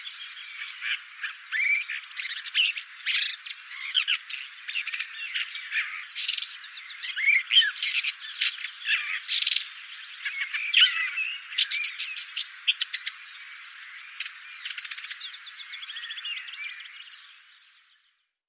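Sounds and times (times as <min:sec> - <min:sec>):
bird harsh squawks and chirps: 0:00.0 - 0:13.2.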